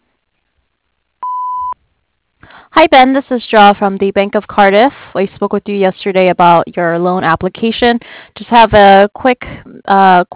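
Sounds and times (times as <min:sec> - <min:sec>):
voicemail answering machine beep: 0:01.2 - 0:01.8
speech: 0:02.8 - 0:10.3.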